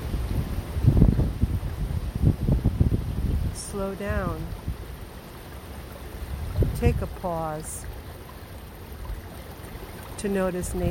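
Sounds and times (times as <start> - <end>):
loud wind blowing outdoors in uneven gusts: 0.0 - 4.9, 6.2 - 7.2
speech: 3.8 - 4.6, 6.8 - 7.9, 10.2 - 10.8.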